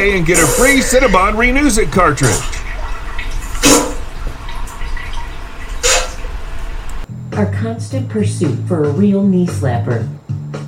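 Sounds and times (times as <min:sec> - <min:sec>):
speech: 0:00.0 - 0:02.6, 0:07.4 - 0:10.6
running water flowing: 0:00.0 - 0:07.1.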